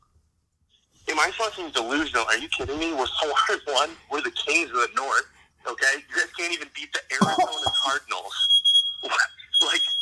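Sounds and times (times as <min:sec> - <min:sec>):
speech: 0:01.2 - 0:09.9
smoke alarm sounding a piercing high-pitched tone: 0:07.2 - 0:10.0.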